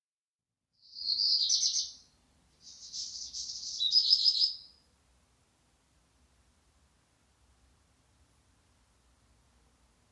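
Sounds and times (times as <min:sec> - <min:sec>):
black redstart song: 0:00.9 - 0:02.0, 0:02.6 - 0:04.7.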